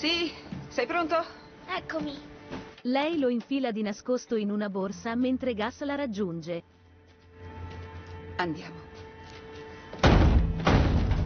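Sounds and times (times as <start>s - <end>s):
speech: 0.0s - 6.8s, 8.4s - 8.8s
front door jolting from a bang: 9.9s - 11.2s.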